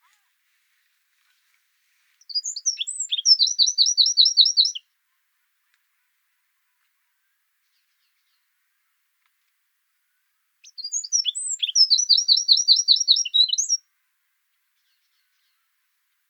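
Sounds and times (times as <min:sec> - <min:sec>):
Eurasian wren Troglodytes troglodytes singing shrill rapid trills: 0:02.2 - 0:04.8, 0:10.6 - 0:13.8.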